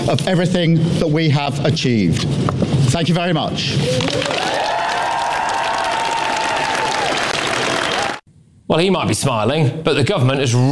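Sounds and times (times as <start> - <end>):
speech: 0.1 - 4.8, 8.7 - 10.6
large crowd applauding after a resignation speech: 3.8 - 8.2.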